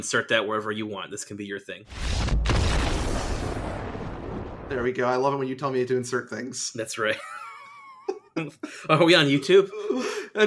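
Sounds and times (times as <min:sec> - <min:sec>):
speech: 0:00.0 - 0:02.5, 0:04.7 - 0:07.4, 0:08.4 - 0:10.4
deep explosion: 0:01.9 - 0:05.5.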